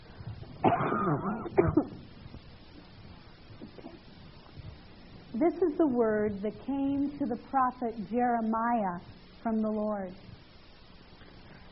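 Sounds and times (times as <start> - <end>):
person coughing harshly: 0.6 - 2.0
speech: 1.0 - 2.1, 5.4 - 10.3.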